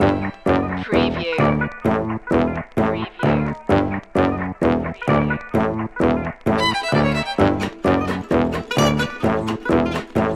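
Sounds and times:
doo wop vocal loop: 0.0 - 10.3.

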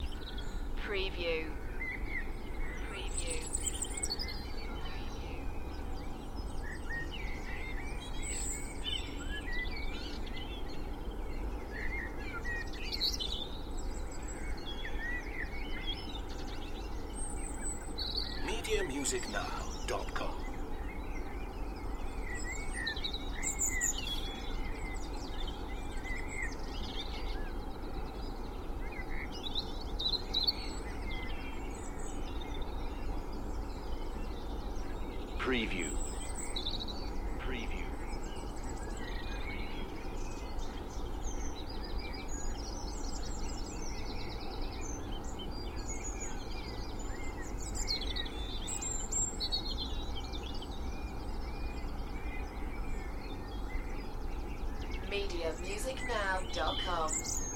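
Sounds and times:
spring dawn chorus of birds in Cheshire UK: 0.0 - 57.5
distant traffic noise in Cheshire UK: 18.4 - 20.7, 55.0 - 57.5.

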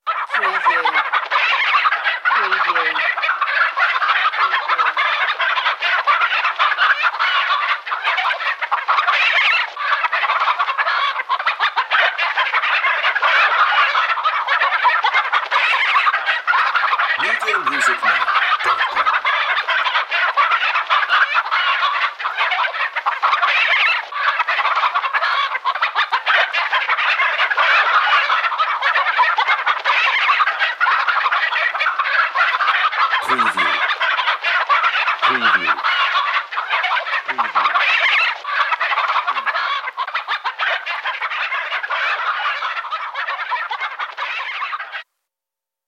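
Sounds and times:
chickens clucking crazily: 0.0 - 45.1
laughter: 17.2 - 19.4, 33.2 - 34.1, 35.2 - 35.8, 37.2 - 37.7.

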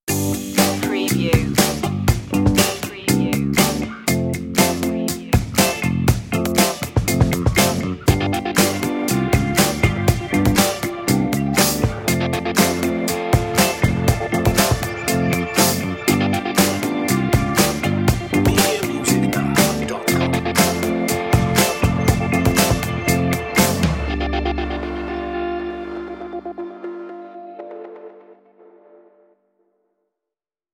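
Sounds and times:
easy funky music: 0.1 - 27.7.

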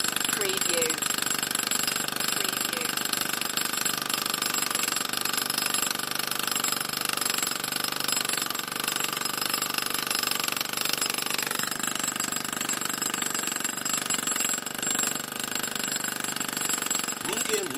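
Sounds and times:
pneumatic hammer: 0.0 - 17.7.

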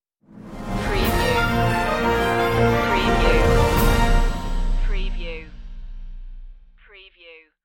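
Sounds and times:
news stinger music: 0.2 - 6.8.

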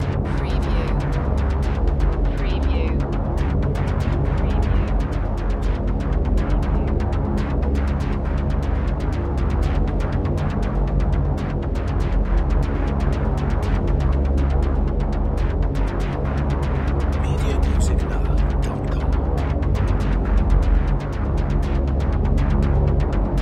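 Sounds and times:
rhythmic sweeping drone: 0.0 - 23.4.

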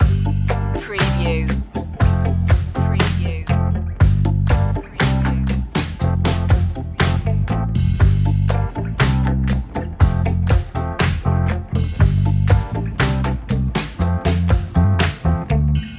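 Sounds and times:
groove music loop: 0.0 - 15.9.

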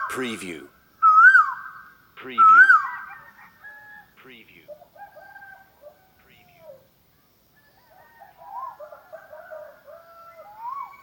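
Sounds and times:
speech: 0.1 - 0.7, 2.2 - 2.8
Asian koel repeating a rising then falling whistled note: 2.4 - 3.0.

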